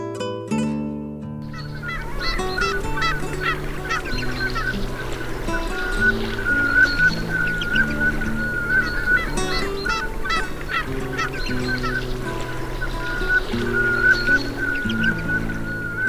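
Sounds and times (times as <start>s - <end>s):
velvet scoters calling: 1.4s - 16.0s.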